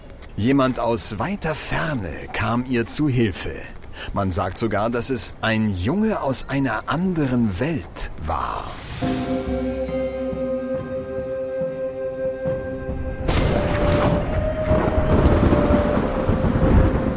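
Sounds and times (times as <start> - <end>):
speech: 0.4 - 9.3
calm sustained musical tones: 8.8 - 17.1
loud crack of thunder rolling into a heavy rumble: 12.9 - 17.1.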